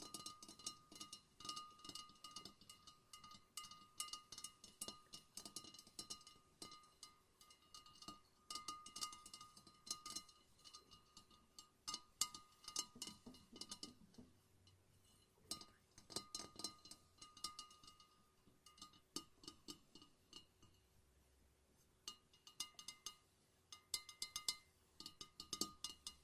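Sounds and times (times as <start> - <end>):
lava lamp being tapped with glassy clinks: 0.0 - 14.8, 15.4 - 20.8, 22.0 - 26.2
faint steady tone: 0.0 - 26.2.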